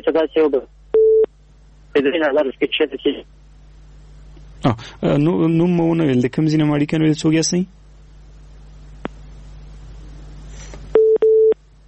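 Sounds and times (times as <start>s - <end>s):
speech: 0.0s - 0.8s, 2.0s - 3.4s, 4.6s - 7.8s
telephone line tone beeps as caller is cut off: 1.0s - 1.3s, 10.9s - 11.6s.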